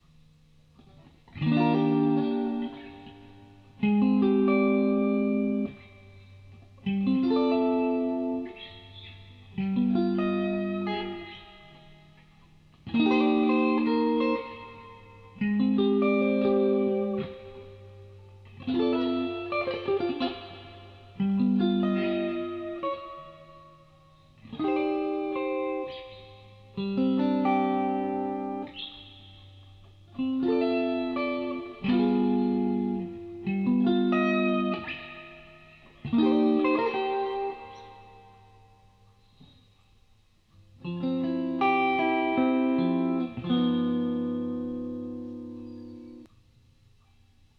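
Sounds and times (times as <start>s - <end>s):
guitar: 0.0s - 47.5s.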